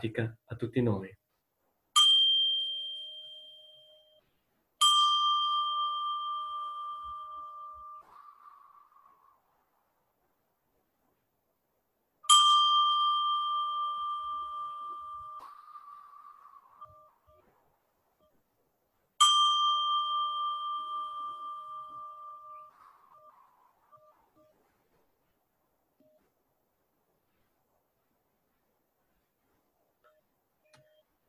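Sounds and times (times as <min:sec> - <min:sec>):
speech: 0:00.0 - 0:01.2
meditation bell struck to begin a meditation: 0:02.0 - 0:04.2, 0:04.8 - 0:09.0, 0:12.3 - 0:17.5, 0:19.2 - 0:24.5.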